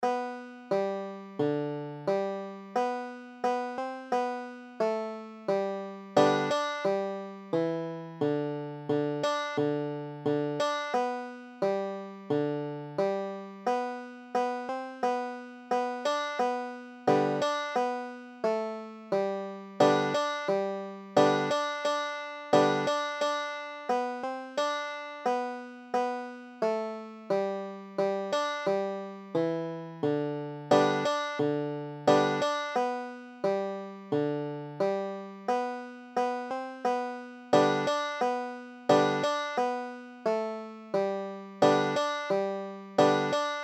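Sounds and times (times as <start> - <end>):
banjo playing a tune in G: 0.0 - 43.6.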